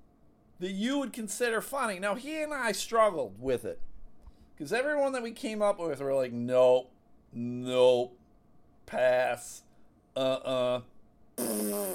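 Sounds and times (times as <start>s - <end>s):
speech: 0.6s - 3.9s, 4.6s - 8.2s, 8.9s - 9.6s, 10.2s - 11.9s
mouth imitation of a fart noise: 11.4s - 11.9s.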